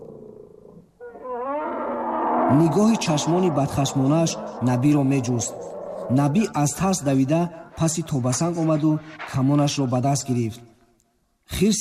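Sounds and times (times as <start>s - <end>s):
wounded bear roaring and growling as a story sound effect: 0.0s - 7.8s
speech: 2.5s - 10.7s, 11.5s - 11.7s.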